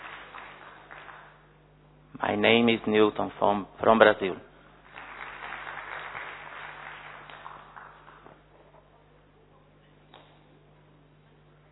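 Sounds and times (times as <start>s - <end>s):
audience clapping for a group of first-timers: 0.0s - 1.6s, 4.8s - 8.9s
speech: 2.2s - 4.5s.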